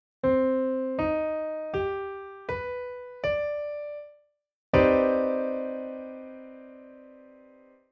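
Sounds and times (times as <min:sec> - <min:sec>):
piano mmaj79 chord: 0:00.2 - 0:04.1, 0:04.8 - 0:07.9.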